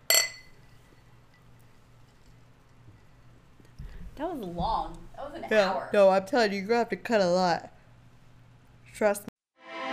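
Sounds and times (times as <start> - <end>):
glasses clinking together in a toast: 0.0 - 0.6
speech: 4.2 - 7.7, 9.0 - 9.3.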